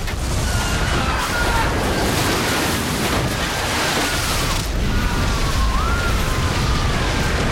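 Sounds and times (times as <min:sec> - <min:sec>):
water flooding into room: 0:00.0 - 0:07.5.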